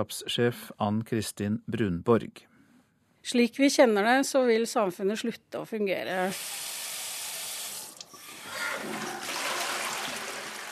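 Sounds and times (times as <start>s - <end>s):
speech: 0.0s - 2.5s, 3.2s - 6.7s
tap water running: 6.3s - 10.7s
toilet flushing: 6.3s - 10.7s.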